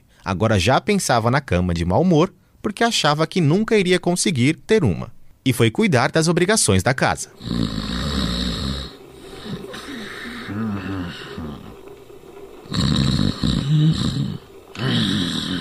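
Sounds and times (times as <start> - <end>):
speech: 0.2 - 8.1
man snoring while asleep: 7.3 - 11.8, 12.6 - 15.5.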